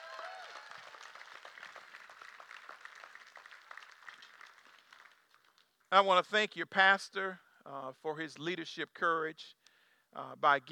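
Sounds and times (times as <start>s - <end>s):
audience clapping in praise to God: 0.0s - 5.9s
speech: 5.9s - 10.7s.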